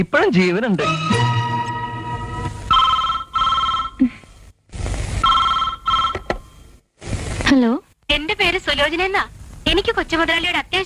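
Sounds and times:
speech: 0.0s - 1.4s, 7.5s - 10.8s
telephone ringing with electronic trill: 1.2s - 4.5s, 5.1s - 6.8s.

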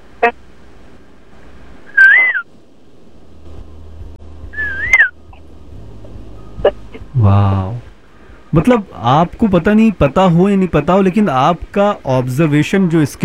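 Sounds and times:
low hum: 0.0s - 13.2s
speech: 0.2s - 0.4s, 8.5s - 13.2s
woman whistling an imitation of a koel call: 1.9s - 2.4s, 4.6s - 5.1s.

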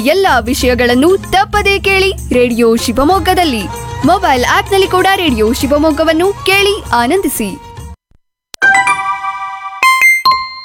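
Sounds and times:
speech: 0.0s - 7.7s
bell-like electronic message notification tone: 8.6s - 10.6s.

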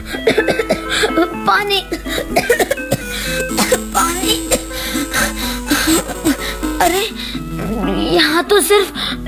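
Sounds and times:
person coughing: 0.3s - 7.3s
speech: 1.5s - 2.6s, 6.9s - 9.2s.

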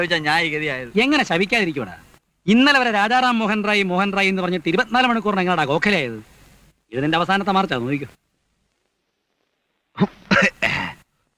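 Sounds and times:
speech: 0.0s - 6.3s, 6.9s - 8.2s, 10.0s - 10.8s
rough throaty coughs: 10.0s - 11.1s.

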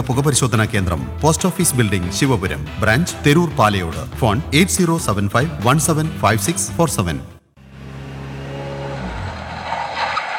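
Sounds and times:
speech: 0.0s - 7.4s
car engine hum while pulling over and stopping: 7.6s - 10.3s.

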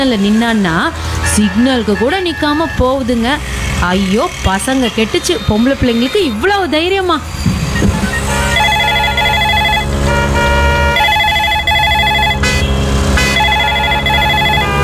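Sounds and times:
speech: 0.0s - 7.5s
mobile phone ringing: 8.6s - 14.8s.

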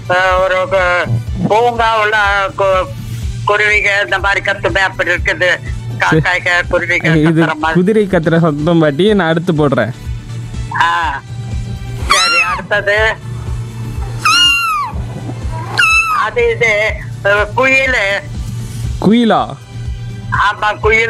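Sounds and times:
speech: 0.1s - 10.1s, 10.7s - 11.3s, 12.7s - 13.3s, 16.2s - 18.3s, 19.0s - 19.6s, 20.3s - 21.0s
cat meowing: 12.1s - 12.6s, 14.0s - 16.4s
steady low hum: 13.2s - 17.3s.

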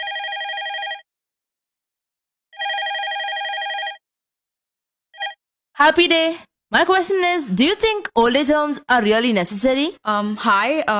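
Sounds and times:
telephone ringing for an incoming caller: 0.0s - 1.1s, 2.6s - 4.0s, 5.2s - 5.4s
speech: 5.8s - 10.9s.

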